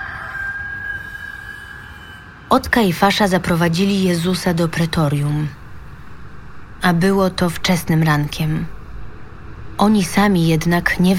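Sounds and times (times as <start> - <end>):
rooster crowing: 0.0 - 2.2
speech: 2.5 - 5.6, 6.8 - 8.8, 9.8 - 11.1
low rumble: 2.5 - 11.1.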